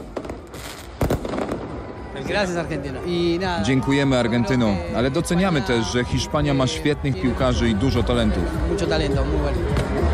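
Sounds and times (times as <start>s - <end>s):
fireworks crackling and banging at night: 0.0s - 3.3s
speech: 2.2s - 10.1s.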